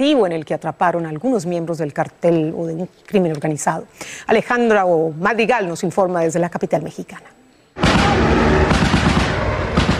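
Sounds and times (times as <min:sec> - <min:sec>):
speech: 0:00.0 - 0:07.4
loud dense gunfire during police shootout: 0:07.8 - 0:09.9.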